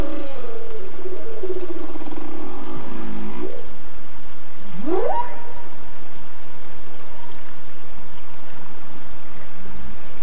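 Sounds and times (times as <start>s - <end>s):
humpback whale song with moans, whoops and grunts: 0.0s - 3.8s, 4.8s - 5.8s.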